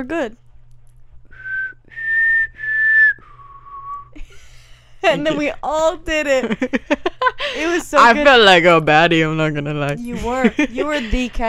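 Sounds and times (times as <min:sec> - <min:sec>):
speech: 0:00.0 - 0:00.4, 0:05.0 - 0:11.4
faint low hum: 0:00.0 - 0:11.4
person whistling a short four-note tune: 0:01.4 - 0:04.1
laughter: 0:04.2 - 0:05.5, 0:06.2 - 0:09.4, 0:10.0 - 0:11.4.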